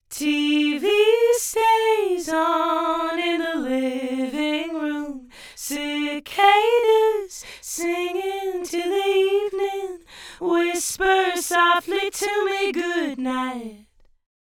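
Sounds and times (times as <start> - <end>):
dual mono voice with right side delayed: 0.0 - 13.8.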